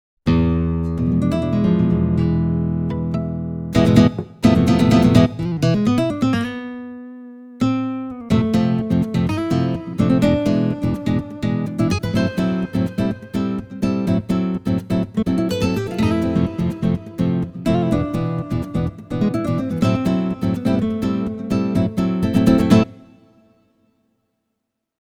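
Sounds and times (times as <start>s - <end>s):
nylon guitar: 0.3s - 23.5s.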